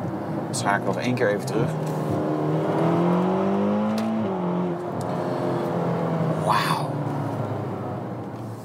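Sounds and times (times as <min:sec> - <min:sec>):
road rumble: 0:00.0 - 0:08.6
speech: 0:00.5 - 0:02.2
Ferrari GTC4Lusso T sports car engine revving while driving: 0:01.4 - 0:08.4.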